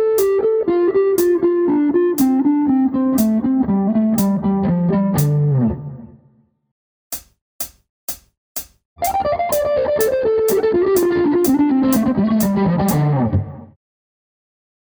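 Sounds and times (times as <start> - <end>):
three pentatonic notes: 0.2 - 6.1, 9.0 - 13.4.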